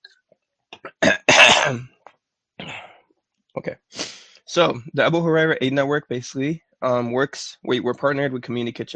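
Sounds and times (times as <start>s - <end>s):
person clearing their throat: 0.8s - 1.9s, 2.6s - 2.9s
speech: 1.6s - 1.9s, 3.6s - 8.9s.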